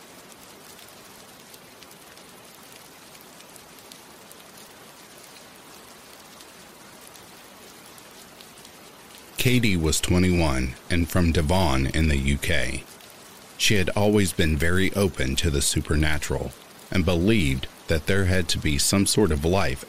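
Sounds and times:
steady rain striking surfaces: 0.0 - 19.8
speech: 9.4 - 12.9, 13.6 - 19.8.

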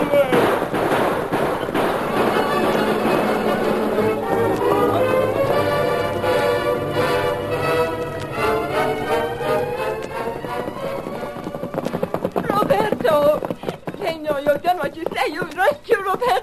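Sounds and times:
two horses galloping: 0.0 - 16.4
dramatic music: 1.3 - 11.8.

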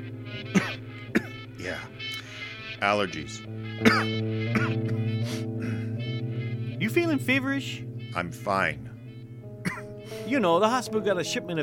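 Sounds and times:
short dry coughs: 0.5 - 1.4, 3.8 - 5.9, 9.6 - 10.2
speech: 2.8 - 4.9, 6.9 - 8.9, 10.3 - 11.6.

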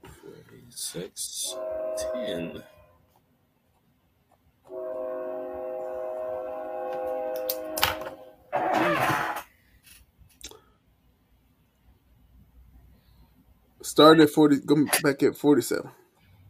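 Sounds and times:
speech: 0.7 - 2.8, 14.0 - 16.0
rushing rail noise of passing train: 1.4 - 2.8, 4.7 - 8.4
train horn blast: 1.4 - 3.0, 4.7 - 9.4.

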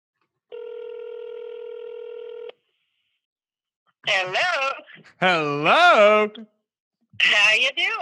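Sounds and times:
steady bright buzzy electronic telephone tone: 0.5 - 2.6
speech: 4.0 - 6.5, 7.2 - 8.0.

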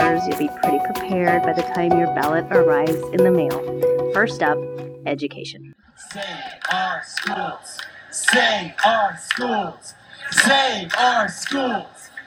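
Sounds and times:
speech: 0.2 - 11.9
crowd chanting at a protest rally: 5.8 - 12.2.

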